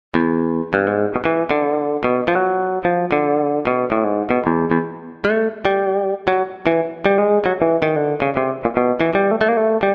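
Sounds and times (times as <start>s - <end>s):
clean Stratocaster electric guitar: 0.1s - 9.9s.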